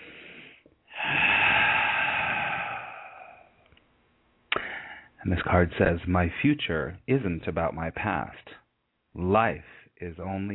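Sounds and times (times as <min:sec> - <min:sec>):
deep breath: 0:00.0 - 0:03.7, 0:04.5 - 0:05.2
speech: 0:05.2 - 0:08.5, 0:09.2 - 0:10.5.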